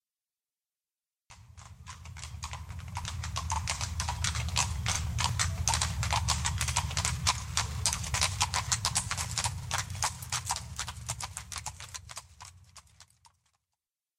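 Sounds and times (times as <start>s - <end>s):
horse hoofbeats fast clip-clop: 1.3s - 13.6s
low rumbling background: 1.4s - 12.4s.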